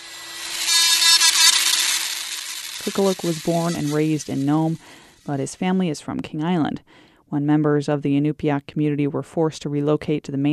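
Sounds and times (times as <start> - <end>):
power drill boring tiny holes into walrus tooth ivory: 0.0 - 5.3
speech: 2.8 - 10.5.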